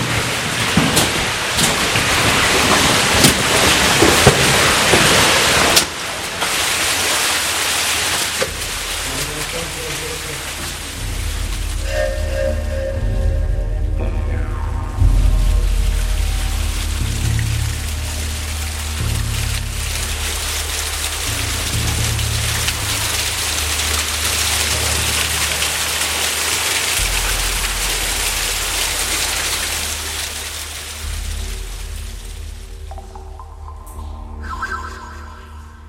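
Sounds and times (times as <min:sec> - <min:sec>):
cave streamway feeder stream rushing in the Burren: 0:00.0 - 0:35.8.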